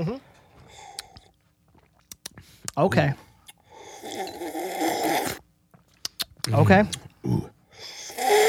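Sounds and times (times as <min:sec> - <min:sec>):
speech: 0:02.8 - 0:03.3, 0:06.5 - 0:07.6
slurping wine with air while tasting: 0:03.8 - 0:05.4.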